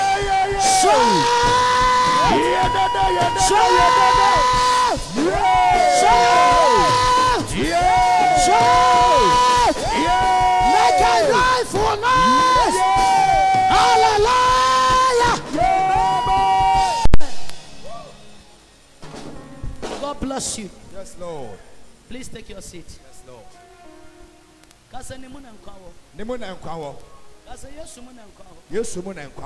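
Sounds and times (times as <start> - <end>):
large crowd screaming and cheering: 0.0 - 18.3
speech: 3.0 - 4.6, 20.4 - 23.0, 25.0 - 29.4.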